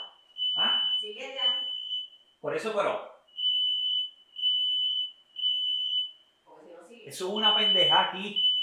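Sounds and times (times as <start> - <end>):
smoke alarm beeping set off by a cooking smell: 0.0 - 2.4, 3.3 - 6.3, 7.2 - 8.6
speech: 1.1 - 1.7, 2.4 - 3.1, 7.1 - 8.5.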